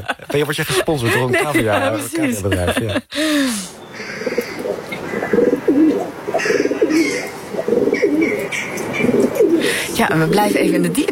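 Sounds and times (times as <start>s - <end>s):
laughter: 0.0s - 3.6s
speech: 0.3s - 4.4s, 10.0s - 11.1s
pigeon cooing in a chimney: 4.1s - 9.7s.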